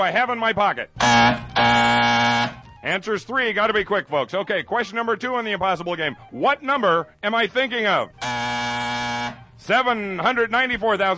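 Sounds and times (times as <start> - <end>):
speech: 0.0 - 8.5, 9.6 - 11.1
harsh game show buzzer: 1.0 - 2.7, 8.1 - 9.6.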